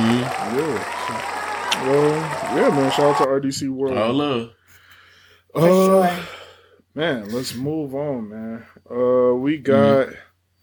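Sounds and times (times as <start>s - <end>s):
crowd applauding at an awards event: 0.0s - 3.3s
speech: 0.5s - 4.6s, 5.5s - 6.4s, 7.0s - 10.3s.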